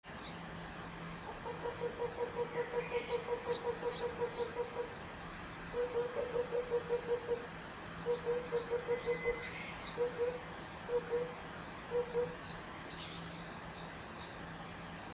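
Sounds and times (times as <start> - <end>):
tsutsudori cuckoo calling from the hill behind the shrine office: 1.3 - 5.0, 5.7 - 13.4.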